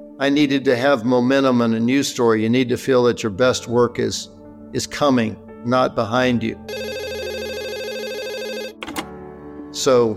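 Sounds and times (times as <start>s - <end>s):
speech: 0.2s - 6.9s, 9.8s - 10.1s
telephone ringing with a warbling electronic tone: 6.7s - 9.2s.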